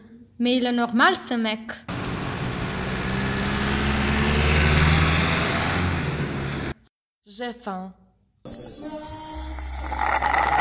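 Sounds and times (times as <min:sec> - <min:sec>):
speech: 0:00.4 - 0:01.9, 0:07.4 - 0:08.6
broad road noise: 0:01.9 - 0:06.8
car passing quickly outside a university faculty of philosophy: 0:01.9 - 0:06.8.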